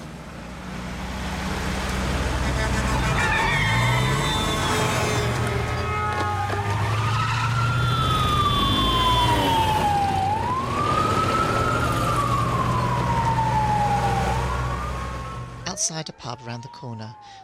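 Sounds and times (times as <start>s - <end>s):
low rumbling engine and traffic drone: 0.0s - 17.4s
police car siren wailing: 2.1s - 17.4s
speech: 15.9s - 17.4s.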